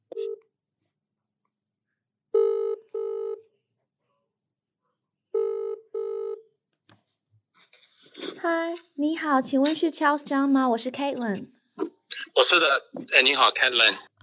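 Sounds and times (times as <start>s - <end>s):
outgoing phone call ringing tone: 2.4s - 3.4s, 5.4s - 6.5s
speech: 8.4s - 11.6s, 12.4s - 14.2s.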